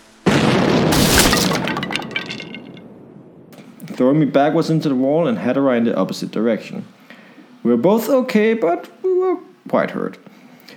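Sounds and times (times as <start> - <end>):
explosion blowing a door to pieces: 0.0 - 3.6
debris crashing and splintering: 0.3 - 2.9
falling fragments cracking and clinking: 1.0 - 2.8
speech: 4.0 - 7.0, 7.6 - 10.3.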